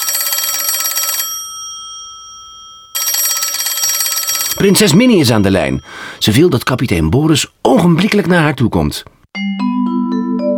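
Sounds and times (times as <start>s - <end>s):
old-fashioned telephone bell ringing: 0.0s - 6.1s
speech: 4.6s - 9.6s.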